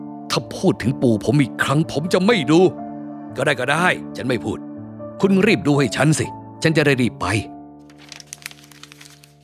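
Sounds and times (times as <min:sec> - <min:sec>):
speech: 0:00.4 - 0:07.5
paper rustling and crackling as it is unfolded: 0:07.8 - 0:09.4.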